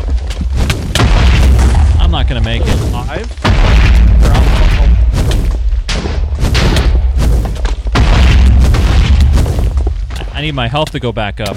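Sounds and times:
explosive skulls fired by a boss in a video game, deep booms and blasts: 0:01.0 - 0:10.1
speech: 0:02.5 - 0:03.4, 0:10.5 - 0:11.5.

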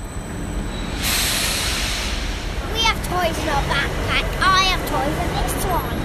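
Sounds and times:
train grinding into station: 0:00.0 - 0:06.0
high metallic train brake squeals: 0:00.2 - 0:01.6
rushing hiss of arriving train: 0:01.0 - 0:02.8.

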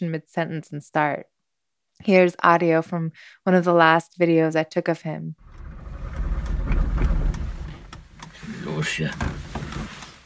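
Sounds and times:
speech: 0:00.0 - 0:01.4, 0:02.0 - 0:05.4, 0:08.8 - 0:09.4
old car engine mechanical rattles: 0:05.4 - 0:08.4
old car engine cranking and starting: 0:05.4 - 0:10.2.

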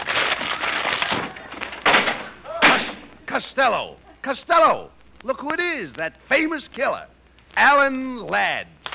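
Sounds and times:
crackling cracking wood: 0:00.0 - 0:03.0
wooden door smashed in with a splintering crash: 0:00.1 - 0:03.1
loud impacts: 0:01.1 - 0:03.4
speech: 0:03.4 - 0:08.8.

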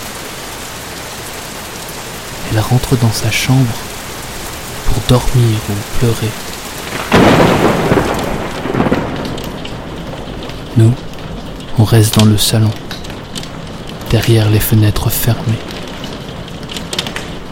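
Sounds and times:
steady heavy summer rain on a stormy evening: 0:00.0 - 0:17.5
thunder rumbling during a summer evening thunderstorm: 0:02.3 - 0:17.5
speech: 0:02.5 - 0:03.9, 0:05.0 - 0:06.5, 0:10.8 - 0:11.0, 0:11.8 - 0:12.9, 0:14.1 - 0:15.7.

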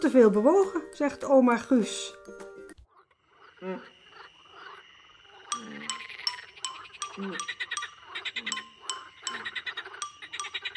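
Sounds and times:
speech: 0:00.0 - 0:02.4, 0:03.6 - 0:03.9, 0:07.2 - 0:07.7
frog croaking in sharp calls: 0:02.8 - 0:10.7.

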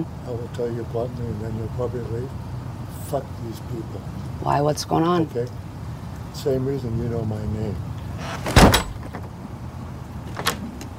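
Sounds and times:
speech: 0:00.0 - 0:02.5, 0:03.1 - 0:05.6, 0:06.4 - 0:08.3
house door slamming shut: 0:08.2 - 0:09.2, 0:10.3 - 0:10.6.

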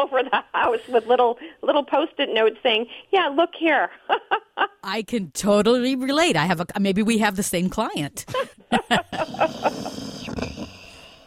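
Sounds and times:
speech: 0:00.0 - 0:10.1
laughter: 0:08.3 - 0:10.7
dog asleep snoring: 0:09.2 - 0:11.2.

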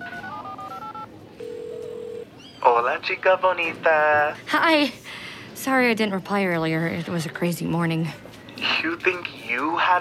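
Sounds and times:
telephone keypad dual-tone beeps placing a call by voice command: 0:00.0 - 0:02.2
steady humming phone ring tone as the call connects: 0:00.0 - 0:02.3
speech: 0:02.7 - 0:09.9.

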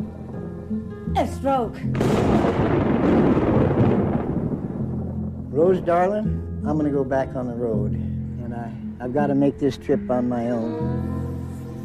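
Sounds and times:
speech: 0:00.7 - 0:03.4, 0:05.6 - 0:11.2
deep sustained rumble of thunder during a lightning storm: 0:01.9 - 0:06.2.

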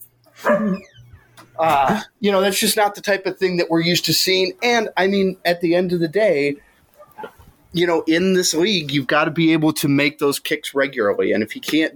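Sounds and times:
dog barking excitedly at home: 0:00.4 - 0:00.8
speech: 0:00.6 - 0:00.9, 0:01.6 - 0:11.9.

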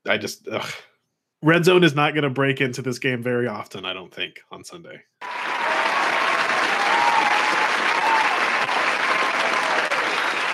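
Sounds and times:
speech: 0:00.0 - 0:05.4
crowd applause: 0:05.2 - 0:10.5
faint whoops or voices in the crowd: 0:05.2 - 0:10.5.

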